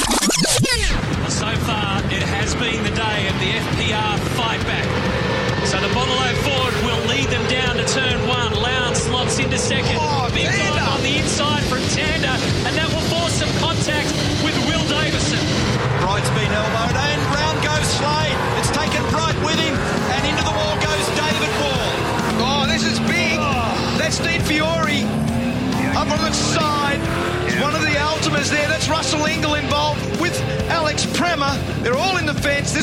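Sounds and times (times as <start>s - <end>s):
voices talking: 0.0s - 32.8s
race car engines roaring at race start: 0.8s - 32.8s
race cars crashing at race start at turn one: 2.2s - 30.0s.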